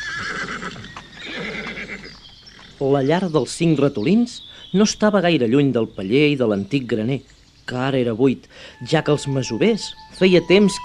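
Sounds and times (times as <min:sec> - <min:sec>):
horse whinnying in a meadow: 0:00.0 - 0:02.8
speech: 0:02.8 - 0:10.8.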